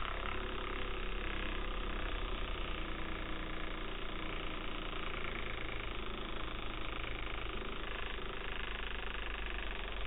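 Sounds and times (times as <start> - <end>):
table fan running: 0.0 - 10.0.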